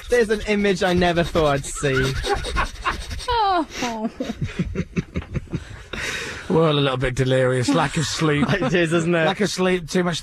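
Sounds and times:
person making dog-like sniffing and panting noises: 0.0 - 4.0
speech: 0.1 - 2.8, 3.5 - 4.8, 6.5 - 10.2
laughter: 1.6 - 6.0, 7.6 - 9.0.

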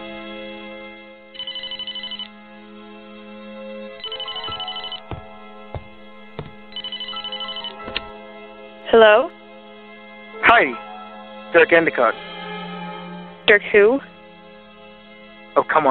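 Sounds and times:
telephone ringing with rapid trilling electronic tones: 1.3 - 2.3, 4.0 - 5.3, 6.6 - 8.0
sharp knocks and clicks: 4.0 - 7.0
speech: 8.9 - 9.4, 10.5 - 10.8, 11.5 - 12.3, 13.5 - 14.1, 15.6 - 15.8.

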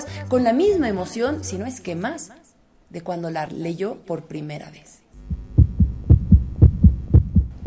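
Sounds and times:
speech: 0.3 - 5.0
loud heartbeat sound effect: 5.2 - 7.6.

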